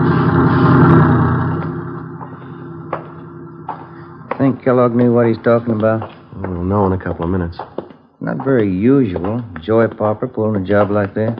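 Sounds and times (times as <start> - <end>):
heavy truck rumbling past on a movie studio lot: 0.0 - 7.3
speech: 4.5 - 11.3.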